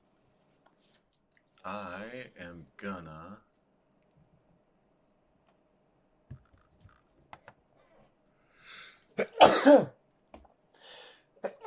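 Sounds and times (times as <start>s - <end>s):
speech: 1.6s - 3.5s, 9.2s - 10.0s
sneeze: 9.2s - 10.0s.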